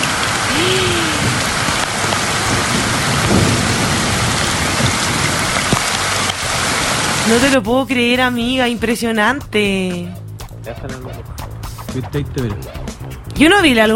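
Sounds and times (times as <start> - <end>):
heavy rain in a thunderstorm: 0.0 - 7.6
thunder rumbling: 0.0 - 7.6
speech: 7.3 - 11.3, 11.9 - 13.9.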